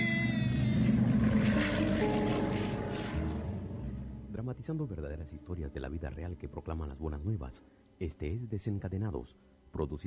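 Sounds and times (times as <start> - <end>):
faint engine whine of propeller airplane: 0.0 - 10.0
propeller airplane droning in flight after losing its starboard engine: 0.6 - 4.3
speech: 4.5 - 10.0.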